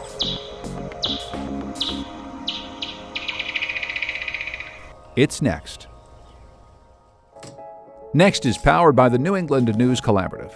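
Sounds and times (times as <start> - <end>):
bat calls with sharp chirps dropping in pitch and buzzing pulse train: 0.0 - 5.9
speech: 5.2 - 5.9, 8.1 - 10.5.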